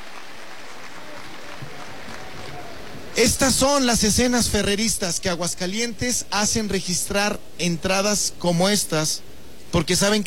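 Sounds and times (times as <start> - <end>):
applause: 0.0 - 3.3
large bullfight crowd roaring and cheering in an ovation: 0.0 - 3.4
speech: 3.2 - 10.2.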